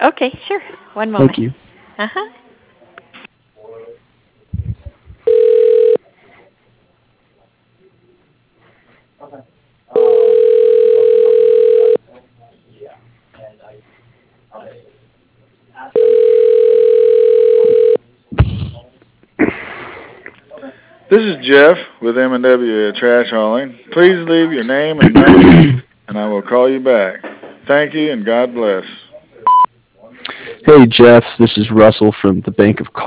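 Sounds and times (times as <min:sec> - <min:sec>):
speech: 0:00.0 - 0:02.4, 0:09.2 - 0:09.6, 0:21.1 - 0:28.9, 0:30.6 - 0:33.0
telephone line tones while a call is transferred to voicemail: 0:05.3 - 0:06.0, 0:10.0 - 0:12.0, 0:16.0 - 0:18.0.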